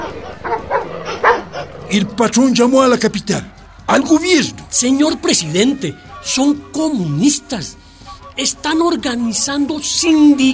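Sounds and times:
dogs barking: 0:00.0 - 0:03.0
speech: 0:01.9 - 0:07.8, 0:08.4 - 0:10.5.

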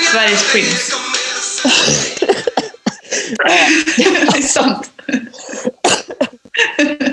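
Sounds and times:
speech: 0:00.1 - 0:01.0, 0:01.6 - 0:02.5, 0:03.4 - 0:05.2
gasping: 0:01.2 - 0:04.1, 0:04.9 - 0:05.9
laughter: 0:01.5 - 0:07.1
harsh raspy coughing fit: 0:01.6 - 0:07.1.

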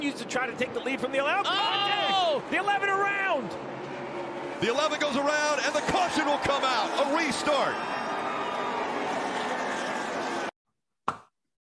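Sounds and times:
speech: 0:00.0 - 0:03.7, 0:04.6 - 0:08.0
large race crowd roaring: 0:01.4 - 0:10.5.

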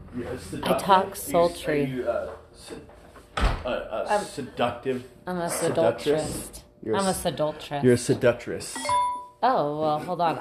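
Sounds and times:
speech: 0:00.2 - 0:02.9, 0:03.6 - 0:10.3
door thudding shut with a short rattle: 0:03.4 - 0:03.7.

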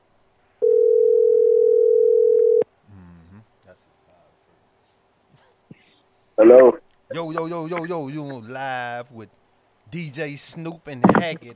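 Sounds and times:
faint room noise: 0:00.0 - 0:11.5
loud telephone dial tone while placing a call: 0:00.6 - 0:02.6
speech: 0:06.5 - 0:11.5.

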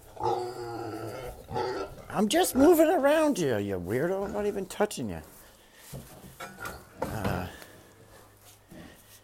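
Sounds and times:
female pot-bellied pig grunting in a small barn on a farm: 0:00.0 - 0:03.4, 0:04.0 - 0:04.9
speech: 0:02.2 - 0:05.4.

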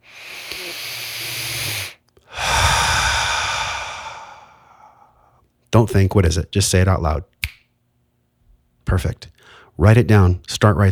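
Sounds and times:
deep breath taken slowly: 0:00.0 - 0:05.4, 0:09.4 - 0:09.7
speech: 0:00.6 - 0:01.5, 0:05.7 - 0:07.4, 0:08.9 - 0:10.9.

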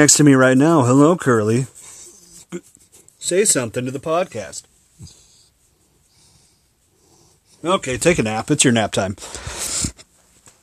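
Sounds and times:
speech: 0:00.0 - 0:01.8, 0:02.5 - 0:05.2, 0:07.6 - 0:10.0
giant red-haired dog huffing and wheezy breathing by the microphone: 0:01.7 - 0:03.2, 0:05.0 - 0:08.2.

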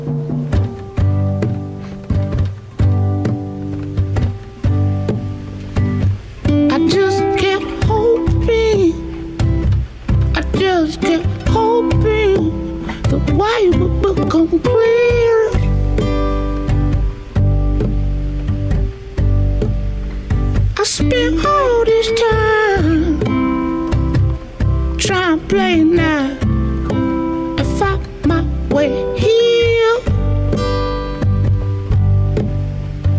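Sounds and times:
full band playing a song from a TV series soundtrack: 0:00.0 - 0:33.1
person singing a vocal melody: 0:06.5 - 0:09.2, 0:10.3 - 0:15.9, 0:20.8 - 0:24.0, 0:24.9 - 0:30.3.

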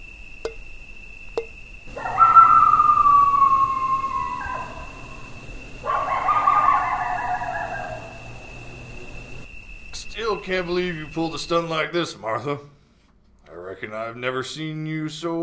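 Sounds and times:
steady high-pitched drone: 0:01.4 - 0:11.9
coyote howling: 0:01.8 - 0:09.5
speech: 0:10.4 - 0:12.8, 0:13.8 - 0:15.4.

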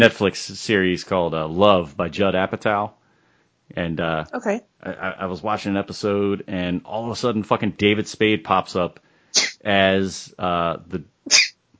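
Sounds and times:
speech: 0:00.0 - 0:03.0, 0:03.7 - 0:11.5
sneeze: 0:09.4 - 0:09.6, 0:11.3 - 0:11.6.

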